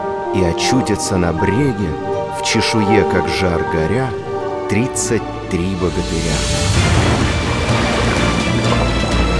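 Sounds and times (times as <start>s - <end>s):
speech: 0.4s - 7.2s
sea surging, waves crashing onto shore: 6.0s - 9.3s.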